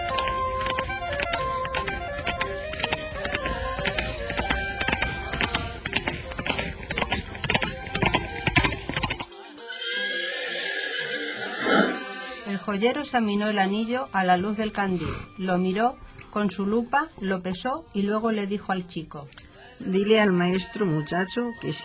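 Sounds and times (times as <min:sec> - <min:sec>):
ridden horse hooves clopping: 0:00.0 - 0:09.4
ridden horse whinnying: 0:09.7 - 0:12.5
speech: 0:12.7 - 0:21.8.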